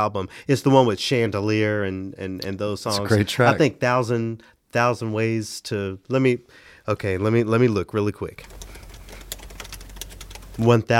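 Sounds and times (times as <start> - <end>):
speech: 0.0 - 8.8, 10.6 - 10.9
rapid keyboard typing: 8.4 - 10.7.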